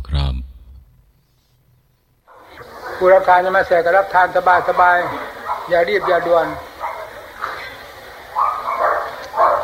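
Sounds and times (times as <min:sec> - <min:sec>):
dog barking: 0:02.3 - 0:03.3, 0:04.6 - 0:09.6
speech: 0:03.0 - 0:06.7.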